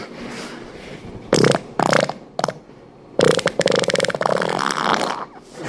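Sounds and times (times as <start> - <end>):
fart bomb noise: 1.3 - 5.4.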